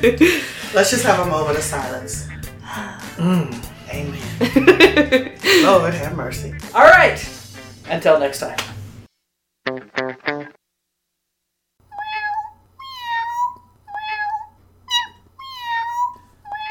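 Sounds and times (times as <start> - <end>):
laughter: 0.0 - 0.8, 4.2 - 5.9
speech: 0.0 - 8.8
cat meowing: 11.9 - 16.7.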